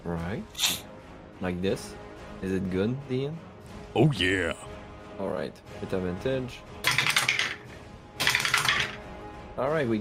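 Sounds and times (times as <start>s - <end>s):
speech: 0.2s - 0.8s, 1.4s - 6.8s, 9.6s - 9.9s
dice clattering on a hard surface: 6.9s - 7.6s, 8.2s - 9.0s.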